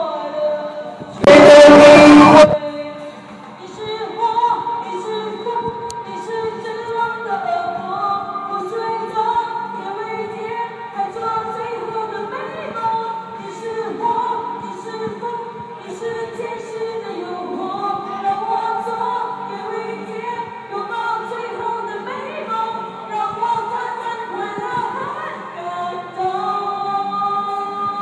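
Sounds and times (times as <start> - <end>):
girls singing karaoke in a Malaysian karaoke bar: 0.0 - 28.0.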